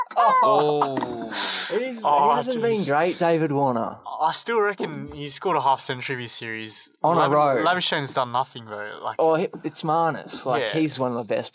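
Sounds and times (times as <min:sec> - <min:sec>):
rubber toy chicken prop squawking and wheezing air: 0:00.0 - 0:00.6
speech: 0:00.3 - 0:11.5.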